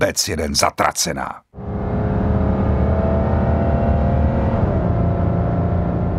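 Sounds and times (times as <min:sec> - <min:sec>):
speech: 0:00.0 - 0:01.6
car engine roaring as it speeds past: 0:01.6 - 0:06.1.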